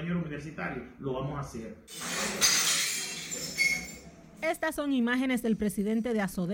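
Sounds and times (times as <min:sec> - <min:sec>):
speech: 0:00.0 - 0:02.7, 0:03.3 - 0:06.5
glass panes being smashed with sticks: 0:01.9 - 0:04.0
bright tinkling glass shards clattering: 0:01.9 - 0:04.1.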